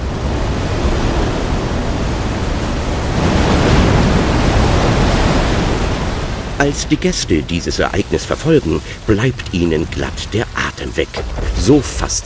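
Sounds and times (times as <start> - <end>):
sea water roaring as a giant dance floor rises out of the ocean: 0.0 - 12.2
speech: 6.6 - 12.2.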